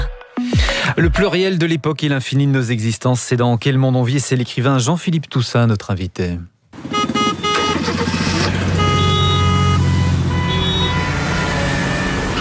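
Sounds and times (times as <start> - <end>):
speech: 1.0 - 7.0
city car horns honking: 6.8 - 12.3
dense city car traffic engine rumble: 6.8 - 12.3.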